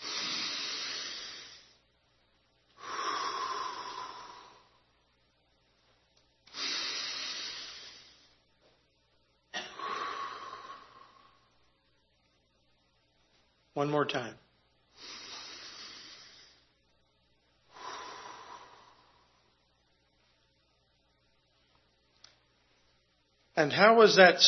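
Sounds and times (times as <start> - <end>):
deep breaths in through the nose and out through the mouth: 0.0 - 1.8, 2.8 - 5.1, 6.5 - 8.5, 9.6 - 11.7, 14.9 - 16.9, 17.6 - 19.8
speech: 13.8 - 14.4, 23.6 - 24.4.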